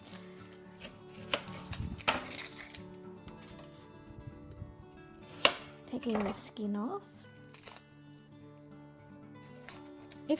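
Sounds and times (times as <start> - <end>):
knife chopping an onion on a cutting board: 0.8 - 2.8, 5.3 - 6.4
speech: 6.0 - 7.2.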